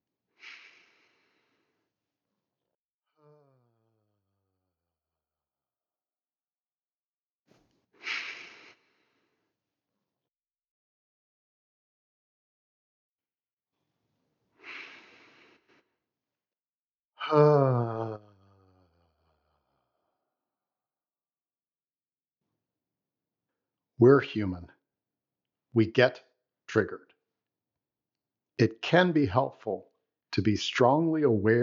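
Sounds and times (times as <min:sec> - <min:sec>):
slow deep breaths from a guided pause: 0:00.4 - 0:02.0, 0:07.9 - 0:09.6, 0:14.5 - 0:16.0
speech: 0:17.3 - 0:18.0, 0:24.0 - 0:24.8, 0:25.7 - 0:27.1, 0:28.6 - 0:31.6.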